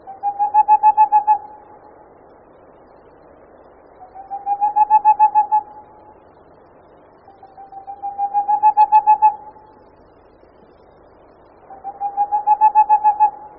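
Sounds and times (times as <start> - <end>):
boreal owl song: 0.0 - 1.7, 4.0 - 5.9, 7.3 - 9.7, 11.7 - 13.5.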